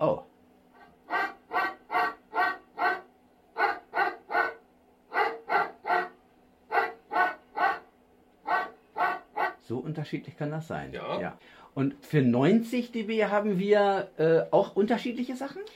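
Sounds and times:
speech: 0.0s - 0.3s, 9.8s - 15.7s
dog barking: 1.1s - 9.6s.

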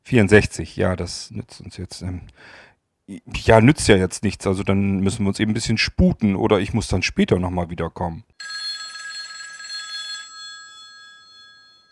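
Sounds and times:
speech: 0.1s - 8.6s
telephone bell ringing: 8.4s - 11.9s.

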